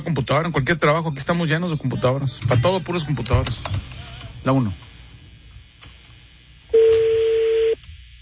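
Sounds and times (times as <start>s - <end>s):
faint hum: 0.0s - 8.2s
speech: 0.1s - 4.9s
telephone dialing tone: 6.7s - 7.8s.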